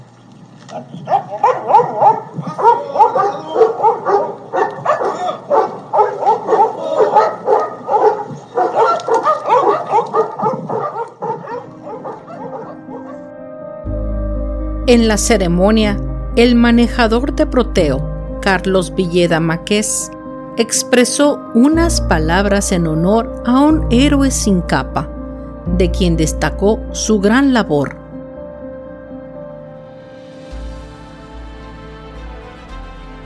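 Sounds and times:
group of dogs barking together: 0.7 - 13.3
speech: 14.9 - 25.1, 25.8 - 28.0.

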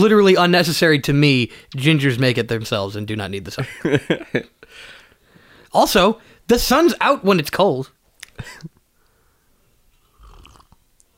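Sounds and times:
speech: 0.0 - 4.9, 5.7 - 8.7
laughter: 3.6 - 4.5
slurping tea from a mug: 10.0 - 10.8.

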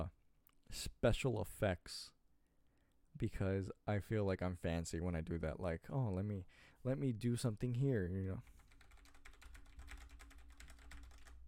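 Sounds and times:
speech: 0.0 - 2.2, 3.2 - 8.5
computer keyboard arrow keys clicking: 8.6 - 11.4.

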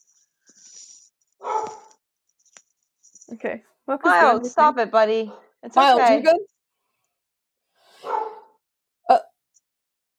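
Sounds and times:
dog barking: 1.4 - 1.9, 5.2 - 5.6, 8.0 - 8.6
speech: 3.3 - 6.5.

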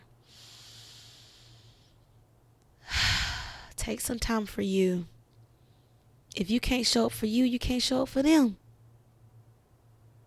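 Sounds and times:
deep breath in and out: 0.2 - 2.0, 2.8 - 3.8
speech: 3.9 - 5.2, 6.4 - 8.6.

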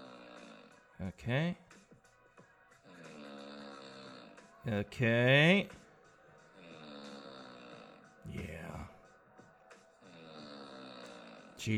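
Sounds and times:
woman snoring loudly: 0.0 - 0.9, 2.8 - 4.6, 6.6 - 8.9, 10.0 - 11.6
speech: 1.0 - 1.7, 4.6 - 5.8.

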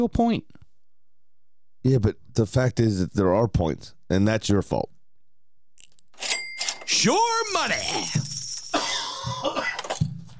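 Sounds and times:
speech: 0.0 - 0.6, 1.8 - 5.0, 7.0 - 8.3
person coughing harshly: 8.7 - 10.0.

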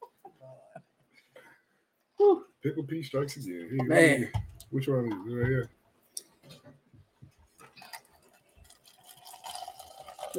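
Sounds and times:
speech: 2.3 - 5.8
liquor glugging and splashing into a glass: 7.8 - 10.3.

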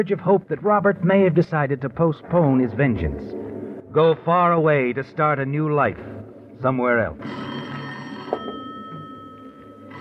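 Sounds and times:
speech: 0.0 - 7.6
telephone bell ringing as a radio drama sound effect: 7.2 - 9.9.

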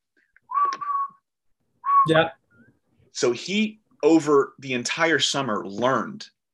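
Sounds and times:
whistled cartoon theme song melody: 0.4 - 2.7
speech: 2.0 - 2.4, 3.2 - 6.4.

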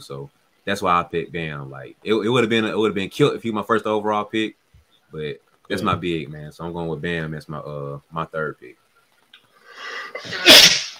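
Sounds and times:
speech: 0.0 - 8.8, 10.1 - 10.8
person sneezing: 10.1 - 10.9.

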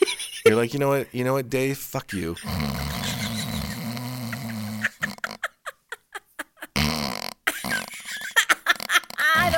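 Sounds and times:
speech: 0.5 - 3.0
voice imitating loud snoring: 2.4 - 5.4, 6.8 - 7.9
laughter: 2.8 - 6.8, 7.5 - 9.5.

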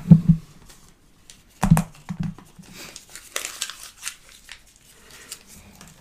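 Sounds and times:
paper ballots for a secret vote being crumpled: 2.6 - 6.0.

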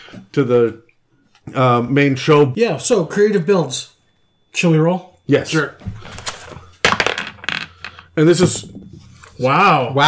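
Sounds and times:
speech: 0.1 - 0.9, 1.5 - 3.9, 4.5 - 6.3, 8.2 - 10.0
dice tossed and clattering on a hard surface: 6.8 - 8.0.

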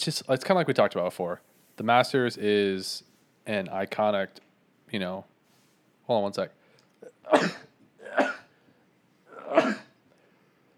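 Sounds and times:
speech: 0.0 - 5.3, 6.1 - 6.6, 7.3 - 8.4, 9.5 - 9.8
person sneezing: 7.0 - 8.5, 9.3 - 10.0.

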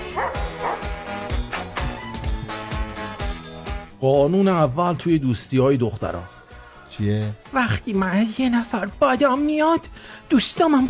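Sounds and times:
dog barking: 0.0 - 1.0
speech: 4.0 - 6.4, 7.0 - 10.8.

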